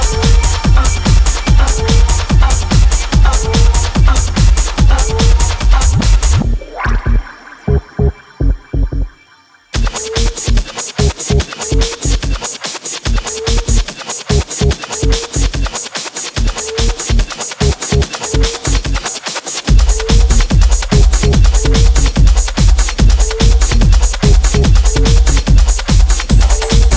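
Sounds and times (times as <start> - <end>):
funk solo: 0.0 - 9.1, 9.8 - 26.9.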